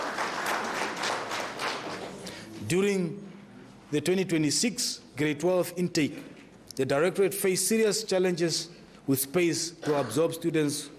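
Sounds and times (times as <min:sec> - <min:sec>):
audience applause at a school infrastructure report: 0:00.0 - 0:02.2
speech: 0:02.7 - 0:03.3, 0:03.9 - 0:10.9.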